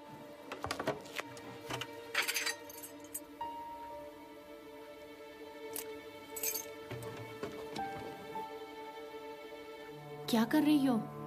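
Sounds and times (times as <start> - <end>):
handling noise: 0.1 - 3.0, 6.4 - 8.4
keys jangling: 1.1 - 3.2, 5.8 - 7.8
speech: 10.3 - 11.1.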